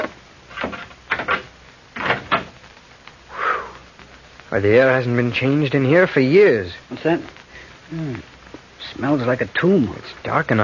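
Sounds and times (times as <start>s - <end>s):
door being opened with scraping creaks and rattles: 0.0s - 2.6s
speech: 4.5s - 10.6s.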